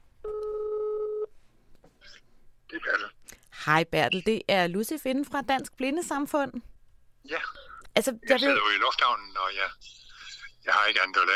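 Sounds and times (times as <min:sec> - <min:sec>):
telephone ringback tone of an outgoing call: 0:00.3 - 0:01.3
speech: 0:02.7 - 0:06.7, 0:07.3 - 0:10.0, 0:10.6 - 0:11.3.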